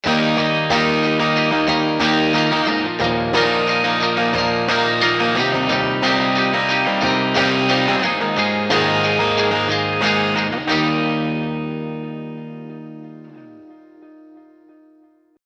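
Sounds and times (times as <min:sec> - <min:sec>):
large tweed combo guitar amplifier: 0:00.0 - 0:15.2.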